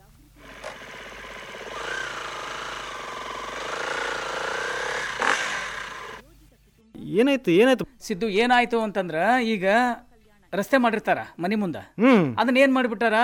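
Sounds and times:
motorcycle engine running: 0.4s - 6.2s
speech: 7.1s - 13.2s.

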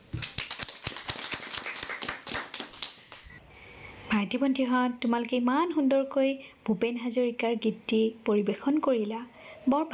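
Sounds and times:
group hand clapping after children sing a song: 0.1s - 3.4s
speech: 4.2s - 9.9s.

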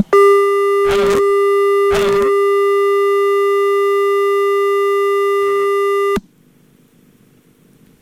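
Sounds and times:
steady electronic telephone ringing tone: 0.0s - 6.2s.

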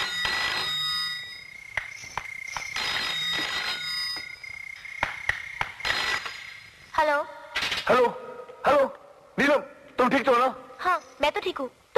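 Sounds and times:
telephone ringing with bright electronic tone: 0.0s - 6.6s
speech: 7.9s - 9.0s, 10.1s - 11.8s.

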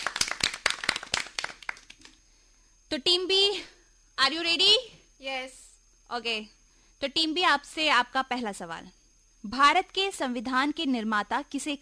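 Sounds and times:
audience clapping during a quiz game show: 0.0s - 2.2s
speech: 2.9s - 11.8s.

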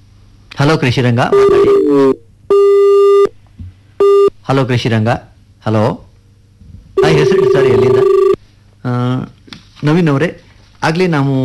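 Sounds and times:
speech: 0.6s - 2.2s, 4.5s - 6.1s, 7.0s - 8.1s, 9.8s - 11.4s
electronic telephone line tones as an incoming call is taken: 1.3s - 3.3s, 7.0s - 8.4s.

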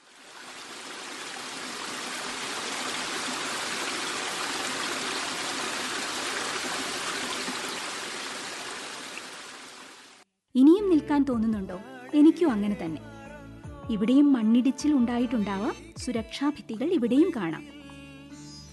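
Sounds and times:
river dropping over a waterfall: 0.4s - 10.2s
speech: 11.1s - 13.1s, 13.9s - 17.8s.

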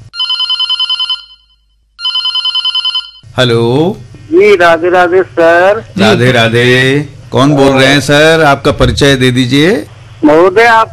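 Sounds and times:
telephone ringing with an incoming call, warbling electronic trill: 0.2s - 3.3s
speech: 3.4s - 10.9s.

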